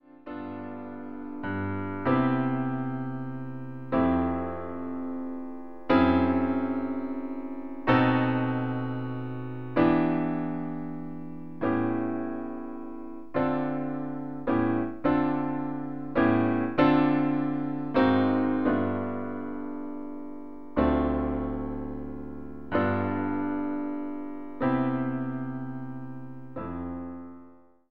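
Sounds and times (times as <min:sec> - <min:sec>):
piano chords: 0:00.0 - 0:27.8.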